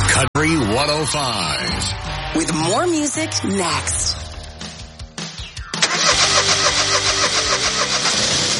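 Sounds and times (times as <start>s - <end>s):
speech: 0.2s - 4.2s
car engine cranking and running: 5.8s - 8.5s.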